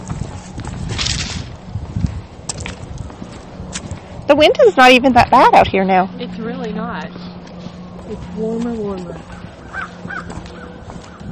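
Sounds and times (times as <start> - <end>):
speech: 4.3 - 7.2, 8.1 - 9.4
crows cawing outdoors: 9.2 - 11.3.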